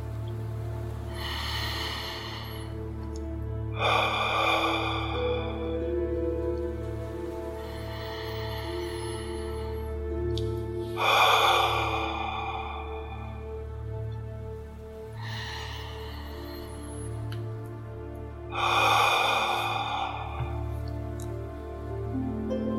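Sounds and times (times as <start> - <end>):
slow deep breaths in and out: 0.0 - 22.1
soft sustained droning musical background: 0.0 - 22.7.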